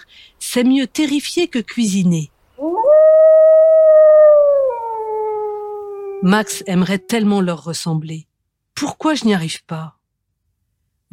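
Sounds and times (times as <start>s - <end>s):
speech: 0.0s - 2.8s, 6.2s - 10.0s
lone wolf howling: 2.6s - 7.5s.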